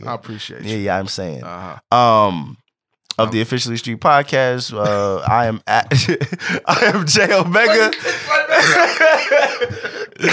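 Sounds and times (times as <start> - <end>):
speech: 0.0 - 2.6, 3.2 - 10.3
laughter: 5.9 - 10.3
harsh coughing close to the microphone: 7.7 - 10.3.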